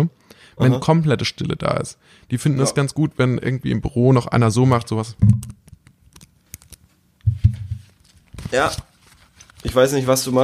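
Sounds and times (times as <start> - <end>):
speech: 0.0 - 5.6, 8.5 - 8.9, 9.6 - 10.4
paper being rustled and handled: 7.5 - 10.4.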